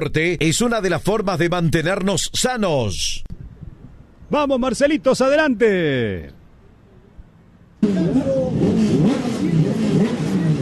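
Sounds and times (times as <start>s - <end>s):
speech: 0.0s - 3.3s, 4.3s - 6.4s
Turismo Carretera racing car engines revving at qualifying in San Nicolás: 7.8s - 10.6s.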